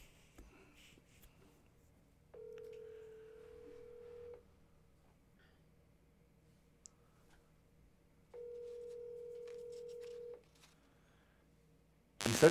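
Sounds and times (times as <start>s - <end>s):
telephone ringback tone: 2.4s - 4.4s, 8.4s - 10.4s.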